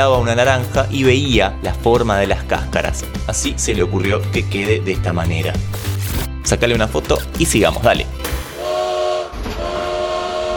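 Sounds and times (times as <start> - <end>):
speech: 0.0 - 8.3
sustained horn-like train whistle tone: 8.6 - 10.5.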